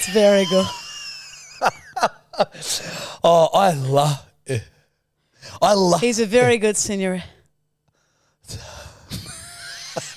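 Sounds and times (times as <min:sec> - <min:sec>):
speech: 0:00.0 - 0:00.8, 0:01.6 - 0:04.7, 0:05.4 - 0:07.4, 0:08.5 - 0:08.8
heavy breathing: 0:02.5 - 0:03.2, 0:07.9 - 0:09.2.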